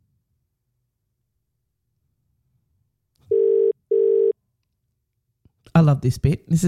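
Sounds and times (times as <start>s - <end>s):
telephone line ringing: 3.3s - 4.3s
speech: 5.8s - 6.6s.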